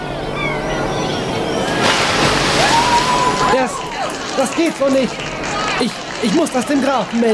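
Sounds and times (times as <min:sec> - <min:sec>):
churning, sloshing river water: 0:00.0 - 0:06.8
crate thrown splashing into a river: 0:01.7 - 0:03.6
speech: 0:04.4 - 0:07.3.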